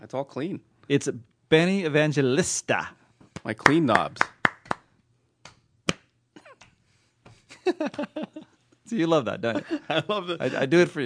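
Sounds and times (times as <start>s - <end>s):
speech: 0.0s - 4.4s, 7.8s - 11.0s
sparse clapping from two people: 3.4s - 6.8s
laughter: 7.5s - 8.6s, 9.4s - 11.0s.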